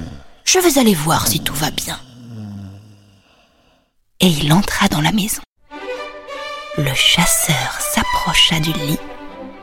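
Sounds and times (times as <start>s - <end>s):
loud snoring: 0.0s - 3.8s
speech: 0.5s - 2.0s, 4.2s - 5.5s, 6.8s - 9.2s.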